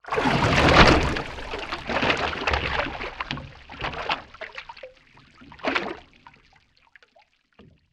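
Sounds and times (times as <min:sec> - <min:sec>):
underwater object movement: 0:00.0 - 0:06.1
water splash: 0:00.0 - 0:06.2
bubbles: 0:00.0 - 0:06.6
wave against boat: 0:00.1 - 0:04.7.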